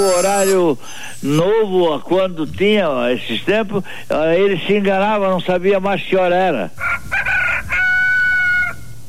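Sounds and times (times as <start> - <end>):
speech: 0.0 - 7.1
rooster crowing: 6.8 - 8.9.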